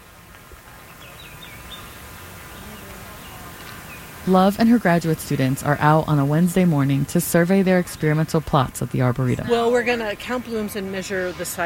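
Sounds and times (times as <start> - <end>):
outdoor breeze: 0.0 - 11.6
bird chirps outdoors: 0.8 - 4.2
speech: 4.2 - 11.6.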